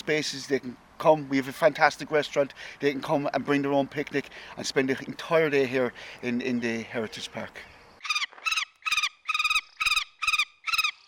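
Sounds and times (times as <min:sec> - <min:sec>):
speech: 0:00.1 - 0:08.2
falcons and hawks calling in the falconry of a castle heritage park: 0:06.5 - 0:11.0.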